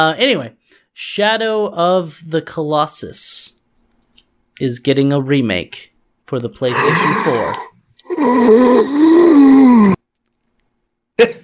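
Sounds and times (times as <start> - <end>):
speech: 0.0 - 3.6, 4.6 - 10.0
loud drawn-out groaning yawn: 6.7 - 10.0.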